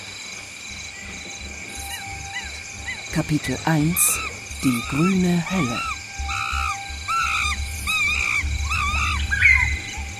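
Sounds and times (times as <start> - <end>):
speech: 3.2 - 5.9
shrill wavering animal calls in a dense rainforest chorus: 3.9 - 9.8.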